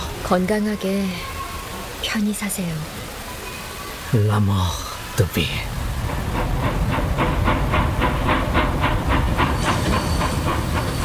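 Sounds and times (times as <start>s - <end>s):
speech: 0.3s - 1.3s, 2.0s - 3.1s, 4.1s - 5.8s
train hissing: 5.7s - 11.0s
wheels clickety-clack over rail joints: 5.7s - 11.0s
high metallic squeal of slowing train: 9.4s - 11.0s.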